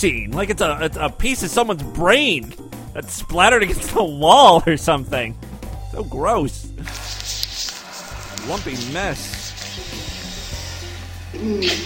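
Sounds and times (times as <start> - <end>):
speech: 0.0 - 7.2, 8.4 - 9.4, 11.4 - 11.8
whooshing hiss of air sucked by a vacuum pump: 6.8 - 11.8.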